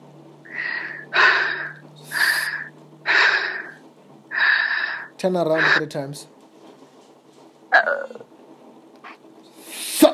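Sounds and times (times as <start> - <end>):
heavy breathing in and out during a prayer session: 0.5 - 5.9
speech: 5.2 - 6.4.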